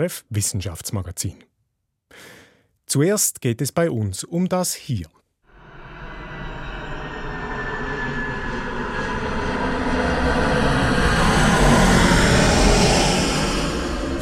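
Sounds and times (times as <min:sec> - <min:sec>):
speech: 0:00.0 - 0:01.5, 0:02.1 - 0:05.2
aircraft passing overhead: 0:05.5 - 0:14.2.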